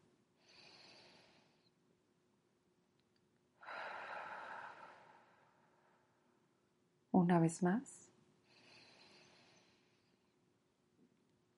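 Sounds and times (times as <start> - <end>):
slow deep breath in and out during a seated relaxation exercise: 0.4 - 1.7, 3.6 - 6.1, 8.4 - 10.4
speech: 7.2 - 8.0.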